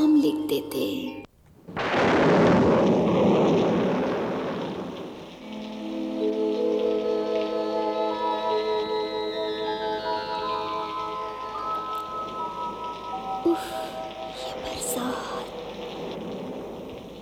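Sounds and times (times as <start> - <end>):
speech: 0.5 - 1.3
heavy rain: 1.3 - 17.2
thunder roar: 1.4 - 8.1, 11.5 - 17.2
sustained musical tones: 5.4 - 17.2.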